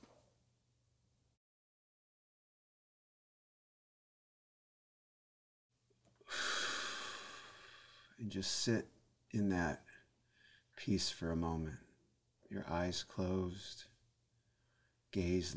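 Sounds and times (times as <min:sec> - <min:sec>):
deep inhale during a guided breathing exercise: 0:06.3 - 0:08.2, 0:10.2 - 0:10.7
speech: 0:08.2 - 0:09.9, 0:10.8 - 0:11.9, 0:12.5 - 0:13.9, 0:15.1 - 0:15.5.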